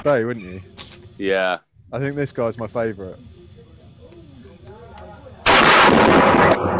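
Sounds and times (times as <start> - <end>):
speech: 0.0 - 3.4
large gun being fired: 5.5 - 6.7.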